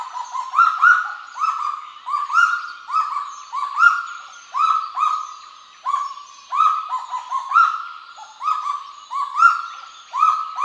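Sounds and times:
Kagu calling: 0.0 - 10.6.

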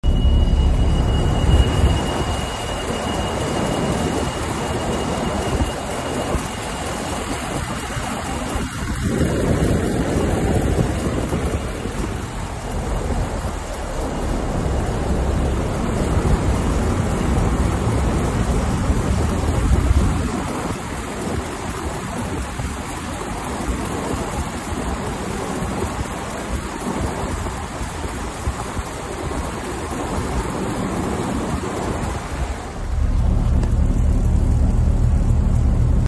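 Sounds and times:
wheel chain rattling: 0.0 - 36.0.

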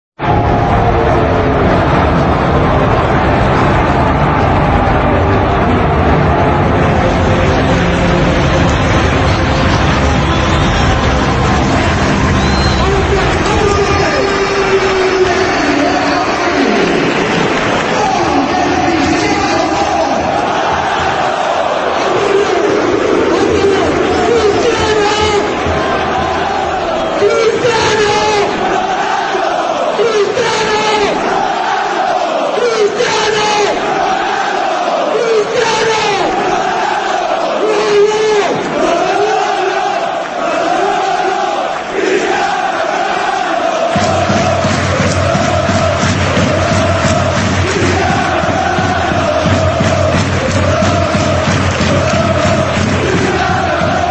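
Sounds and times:
stadium crowd: 0.0 - 54.1.

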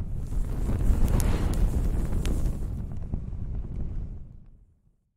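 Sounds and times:
paper burning: 0.1 - 4.0.

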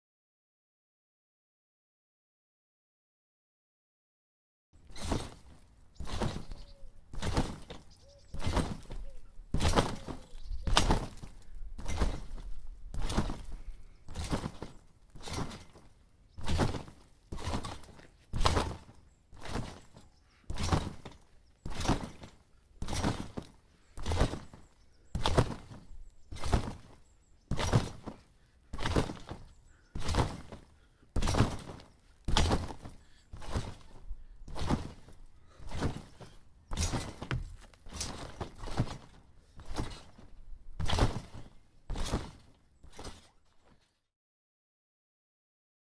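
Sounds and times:
trampoline bouncing: 4.8 - 44.0.

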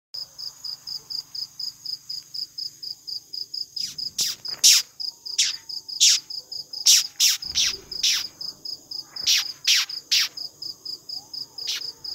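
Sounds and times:
Polyphylla olivieri beetle: 3.8 - 12.1.

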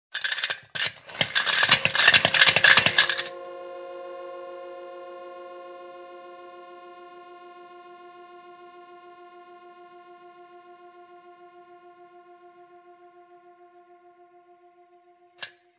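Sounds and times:
spinning top: 0.1 - 3.4.

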